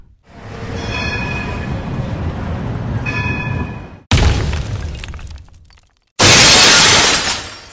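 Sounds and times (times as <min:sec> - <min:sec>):
tram rumbling: 0:00.0 - 0:04.1
tram wheels squealing: 0:00.3 - 0:04.0
glass shattering and crashing: 0:04.1 - 0:07.7.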